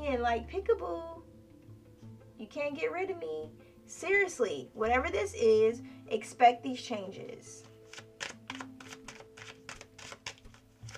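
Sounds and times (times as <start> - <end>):
speech: 0.1 - 1.3, 2.4 - 8.1
tarot cards being shuffled: 7.6 - 10.9.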